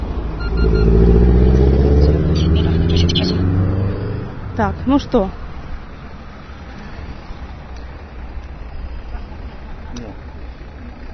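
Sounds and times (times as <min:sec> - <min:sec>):
cars driving past on a street: 0:00.0 - 0:11.1
speech: 0:04.6 - 0:05.4.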